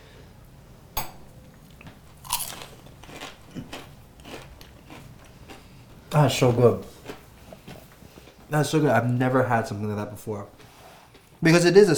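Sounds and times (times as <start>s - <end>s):
biting into fried beef dumplings topped with sugar: 1.7s - 8.4s
speech: 6.1s - 6.9s, 8.5s - 10.6s, 11.4s - 11.9s.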